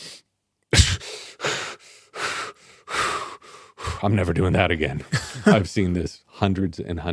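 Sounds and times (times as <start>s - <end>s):
person gasping for air acting out a panic breath hold: 0.8s - 4.1s
quick heavy ragged breaths: 0.9s - 4.2s
speech: 4.0s - 7.1s
laughter: 4.2s - 6.0s.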